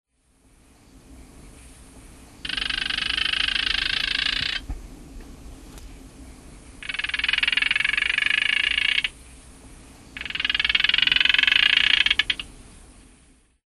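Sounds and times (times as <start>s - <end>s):
Gephyromantis silvanus calling: 2.4s - 4.8s, 5.7s - 9.2s, 10.1s - 12.6s.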